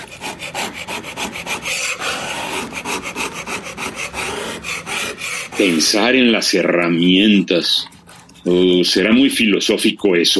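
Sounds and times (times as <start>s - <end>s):
hand saw rasping through a wooden board: 0.0s - 9.2s
speech: 5.6s - 10.3s.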